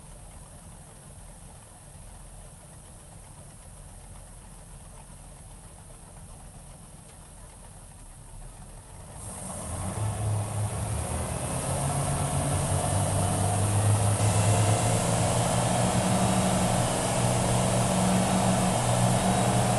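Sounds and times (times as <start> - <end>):
Scarab 34 boat engine starting onboard: 9.0 - 19.7.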